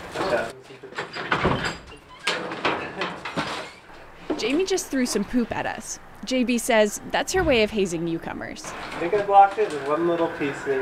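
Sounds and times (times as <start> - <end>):
door opening and banging shut: 1.0 - 3.9
speech: 4.4 - 10.7.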